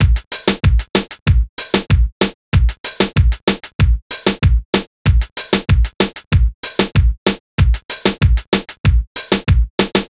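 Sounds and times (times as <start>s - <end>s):
drums in C minor: 0.0s - 10.0s.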